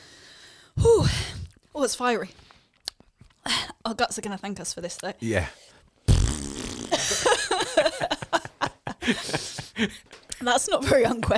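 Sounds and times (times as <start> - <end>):
speech: 1.8 - 2.4, 3.9 - 5.7, 9.1 - 11.3
person vocally imitating a fart: 6.1 - 7.2
laughter: 6.9 - 10.2.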